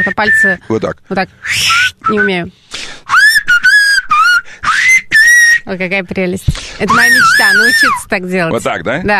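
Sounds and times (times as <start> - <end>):
person whistling through the lips without fingers: 0.0 - 0.6, 1.4 - 5.7, 6.8 - 8.0
speech: 0.0 - 2.8, 5.7 - 9.1.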